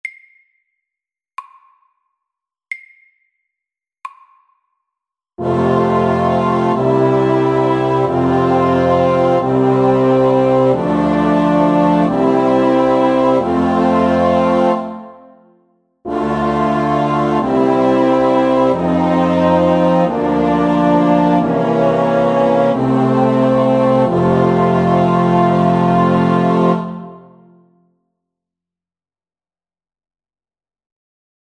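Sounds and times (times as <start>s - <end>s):
slow chromatic chorale: 5.4s - 15.5s, 16.1s - 27.7s.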